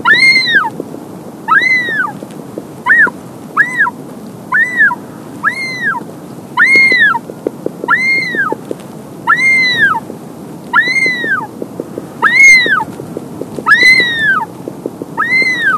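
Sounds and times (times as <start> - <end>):
wandering albatross wailing calls: 0.0 - 0.7, 1.5 - 2.2, 2.8 - 6.0, 6.6 - 7.2, 7.9 - 8.6, 9.2 - 10.0, 10.7 - 11.5, 12.2 - 12.9, 13.6 - 14.5, 15.1 - 15.7
faint rapid ticking: 0.0 - 4.0, 4.6 - 15.7.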